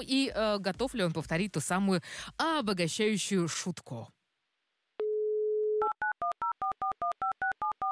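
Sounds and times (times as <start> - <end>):
speech: 0.0 - 4.2
telephone dial tone: 5.0 - 7.9.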